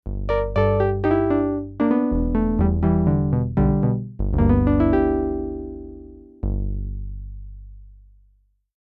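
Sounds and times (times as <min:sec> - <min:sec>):
piano-like Juno6 synthesizer: 0:00.2 - 0:06.5.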